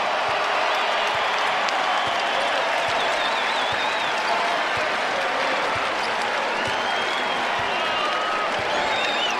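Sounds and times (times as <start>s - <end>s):
packed basketball arena crowd cheering and applauding: 0.0s - 9.3s
shrill whistles in basketball arena crowd: 0.7s - 4.6s, 6.5s - 9.3s.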